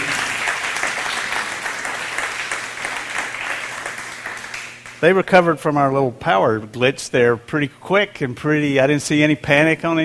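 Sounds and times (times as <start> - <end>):
room full of people applauding: 0.0 - 5.0
speech: 5.0 - 10.0.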